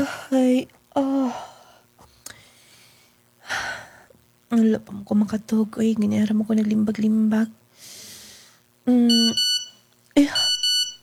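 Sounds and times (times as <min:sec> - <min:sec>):
faint noise: 0:00.0 - 0:11.0
speech: 0:00.3 - 0:01.5, 0:04.5 - 0:07.6, 0:08.9 - 0:09.5, 0:10.2 - 0:10.5
phone text message alert electronic beeps: 0:09.1 - 0:09.8, 0:10.4 - 0:11.0.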